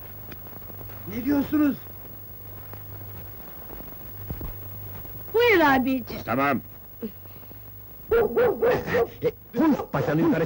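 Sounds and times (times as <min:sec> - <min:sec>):
low hum: 0:00.0 - 0:10.4
speech: 0:01.1 - 0:01.9, 0:05.6 - 0:07.2, 0:08.2 - 0:10.4
dog barking: 0:08.1 - 0:10.0.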